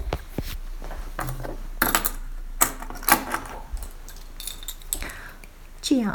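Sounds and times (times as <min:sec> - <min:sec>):
small metal padlock rattling and jingling: 0:01.2 - 0:05.3
speech: 0:05.9 - 0:06.1.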